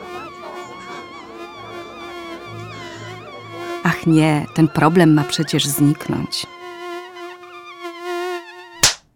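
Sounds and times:
mosquito buzzing: 0:00.0 - 0:09.0
speech: 0:04.0 - 0:06.6
single sharp smack: 0:08.8 - 0:09.0.

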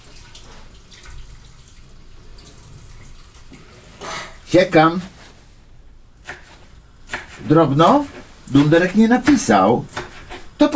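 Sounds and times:
water rushing through a colander as cooked food is drained: 0:00.0 - 0:04.0
speech: 0:04.5 - 0:05.1, 0:07.5 - 0:09.9.

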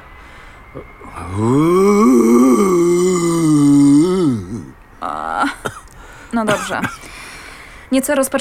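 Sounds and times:
speech: 0:00.7 - 0:02.0, 0:06.3 - 0:07.0, 0:07.9 - 0:08.3
brief shorter vocal sound: 0:00.8 - 0:04.8
man imitating an elephant's roar with his voice in frosty weather: 0:00.8 - 0:05.3.

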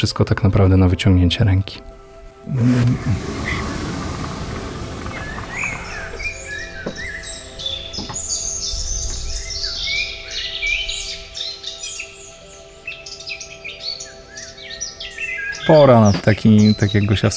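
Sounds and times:
speech: 0:00.0 - 0:03.7, 0:15.7 - 0:17.3
many birds singing and chirping by a ravine with trees in Nałęczów: 0:01.9 - 0:17.3
steady low rumble: 0:02.4 - 0:07.4.

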